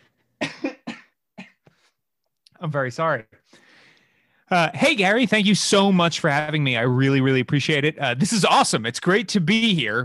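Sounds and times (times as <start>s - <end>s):
harsh coughing: 0.4s - 1.6s
speech: 2.6s - 3.6s, 4.5s - 10.0s.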